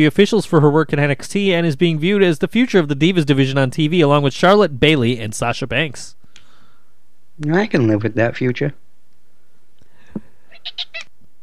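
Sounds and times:
speech: 0.0 - 6.2, 7.4 - 8.8, 10.6 - 11.1
pet cat meowing: 10.5 - 11.1.

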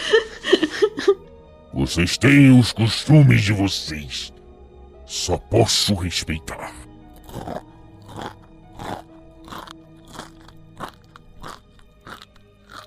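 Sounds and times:
laughter: 0.0 - 1.2
speech: 1.8 - 4.4, 5.1 - 7.7
person chewing and eating food: 7.1 - 12.8.

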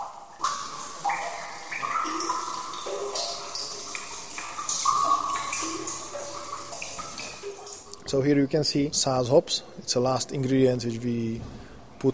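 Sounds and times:
water gushing from a brewery valve in Plzeň: 0.0 - 7.9
speech: 8.1 - 12.1.

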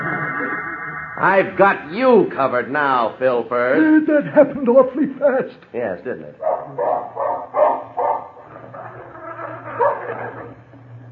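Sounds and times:
speech: 1.2 - 7.2
dog yipping: 6.4 - 8.3, 9.4 - 10.5
dog growling: 6.5 - 11.1.

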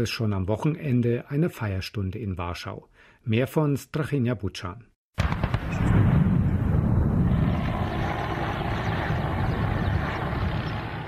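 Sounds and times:
speech: 0.0 - 6.0
sharp cannon fire booms: 5.2 - 10.6
loud steady helicopter rumble: 5.4 - 11.0.

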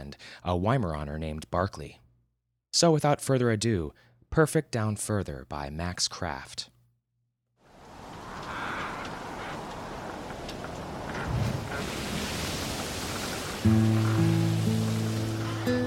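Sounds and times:
speech: 0.1 - 2.0, 2.8 - 6.7, 13.6 - 14.0
ocean waves roaring: 7.7 - 15.8.

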